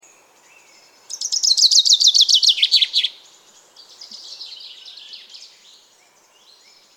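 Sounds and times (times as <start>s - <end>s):
common chaffinch (Fringilla coelebs) song: 0.0s - 6.9s.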